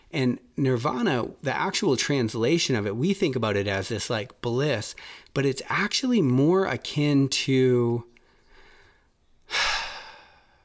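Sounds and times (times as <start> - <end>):
speech: 0.1 - 8.1
deep breath in and exhale: 5.0 - 5.3, 8.2 - 10.6.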